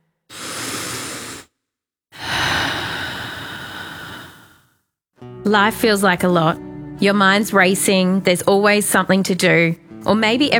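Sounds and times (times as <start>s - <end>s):
slow deliberate breath in and out: 0.2s - 4.9s
speech: 5.5s - 10.5s.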